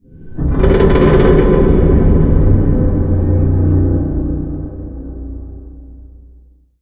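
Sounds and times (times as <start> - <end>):
industrial warehouse ambience: 0.0 - 5.9.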